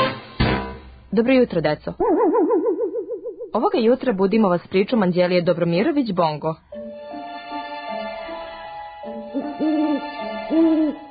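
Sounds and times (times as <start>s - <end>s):
speech: 1.1s - 2.4s, 3.5s - 6.7s
owl hooting: 2.0s - 3.6s, 9.2s - 11.0s.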